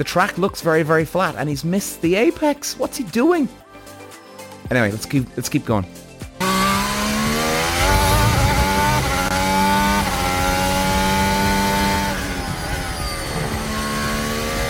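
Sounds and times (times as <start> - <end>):
speech: 0.0 - 3.6, 4.7 - 6.0
Formula 1 car engine revving on a track through gear changes: 6.4 - 14.6.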